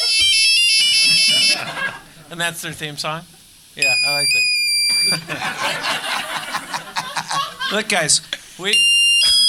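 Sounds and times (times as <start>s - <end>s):
electronic cell phone ringtone: 0.0s - 1.6s, 3.8s - 5.2s
laughter: 1.0s - 2.3s, 4.9s - 8.0s
speech: 1.6s - 6.2s, 7.7s - 8.9s.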